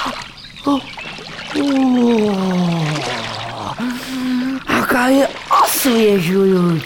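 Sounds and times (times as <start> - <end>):
feet splashing in the shallow running water of a small brook: 0.0 - 6.8
speech: 0.1 - 2.5, 5.0 - 6.8
person sighing with relief: 1.7 - 4.7.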